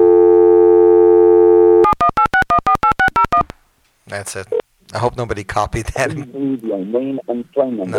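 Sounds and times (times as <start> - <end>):
steady telephone tone humming: 0.0 - 3.4
touch-tone beeps of a number being redialed: 1.8 - 3.4
speech: 4.1 - 7.9.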